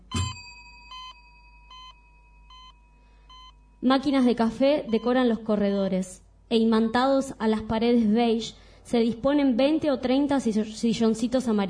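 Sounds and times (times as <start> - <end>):
electronic elevator chime: 0.0 - 3.9
faint steady hum: 0.0 - 11.6
speech: 3.8 - 11.6.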